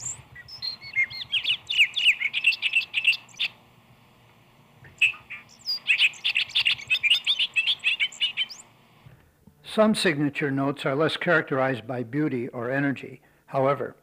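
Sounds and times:
bobolink singing in flight over a meadow: 0.0 - 3.6, 4.8 - 8.8
speech: 9.8 - 14.0.

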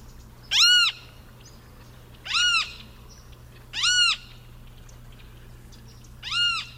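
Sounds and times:
faint hum: 0.0 - 6.7
Great Kiskadee nasal squawks: 2.3 - 2.9, 3.8 - 4.4, 6.2 - 6.7.

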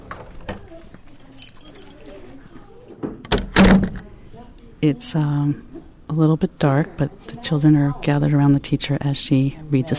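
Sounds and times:
classroom door shutting with a solid thud: 3.0 - 4.1
speech: 4.8 - 9.9.

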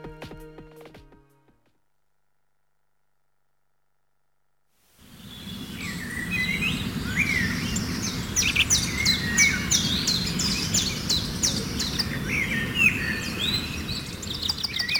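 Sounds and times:
several birds chirping and trilling: 5.1 - 14.9.

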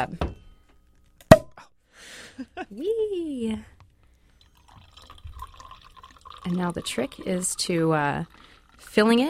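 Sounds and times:
speech: 0.0 - 0.3, 2.7 - 3.8, 6.4 - 9.2
sparkling wine poured into a champagne glass: 4.3 - 9.2.

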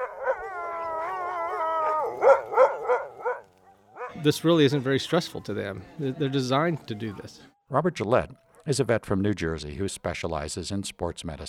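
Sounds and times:
sled dogs howling in chorus after race lap: 0.0 - 4.2
speech: 4.2 - 11.4.

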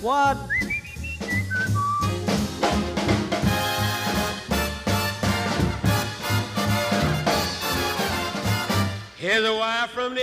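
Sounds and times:
speech: 0.0 - 0.8, 9.2 - 10.2
loud band music with pounding bass and drums: 0.0 - 9.1
person whistling imitating a bird: 0.4 - 2.2.

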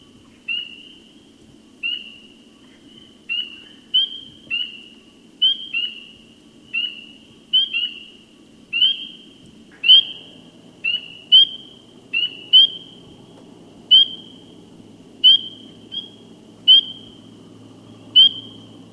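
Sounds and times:
spring peeper calling: 0.5 - 1.0, 1.8 - 2.3, 3.3 - 13.1, 13.9 - 14.6, 15.2 - 18.8.

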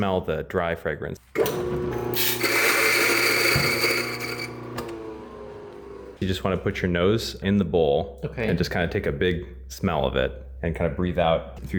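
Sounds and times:
speech: 0.0 - 2.5, 6.2 - 11.7
Geisha coffee beans being ground for a cupping: 1.4 - 6.2.

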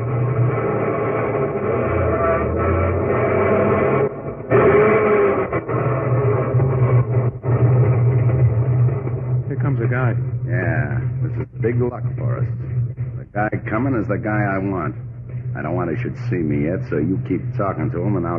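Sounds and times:
car engine rumbling as the car pulls up and drives into a city garage: 0.0 - 18.3
speech: 13.4 - 18.3.

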